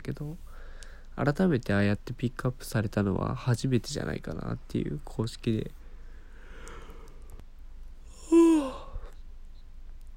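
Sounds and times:
speech: 0.0 - 0.5, 1.2 - 5.8
person yawning: 8.1 - 9.1.

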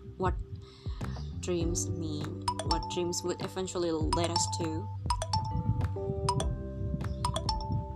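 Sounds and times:
speech: 0.2 - 0.8, 1.4 - 5.2
mobile phone ringing with an electronic melody: 2.5 - 3.1, 4.2 - 6.6, 7.3 - 7.9.

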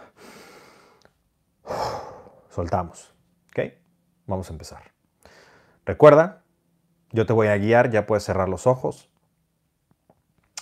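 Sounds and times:
slow breathing in and out during a relaxation exercise: 0.0 - 2.6, 5.2 - 5.8
speech: 2.6 - 4.9, 5.9 - 6.4, 7.1 - 9.1.

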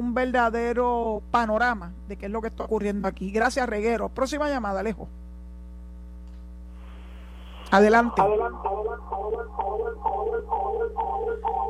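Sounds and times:
steady low electrical hum: 0.0 - 11.6
speech: 0.2 - 5.2, 7.7 - 11.6
audio feedback of garbled voice from a caller's radio over a phone line: 7.7 - 11.6.

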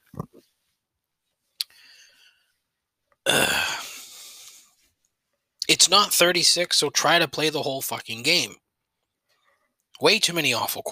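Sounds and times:
loud burp into the microphone: 3.2 - 4.0
short low throaty sounds: 3.3 - 4.1
speech: 5.8 - 8.6, 10.0 - 10.9.

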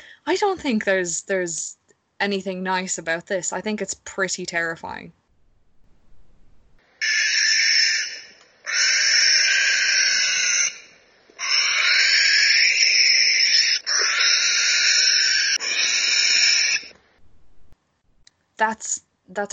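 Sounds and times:
speech: 0.2 - 5.2, 18.6 - 19.5
barn owl screaming: 7.0 - 16.9.

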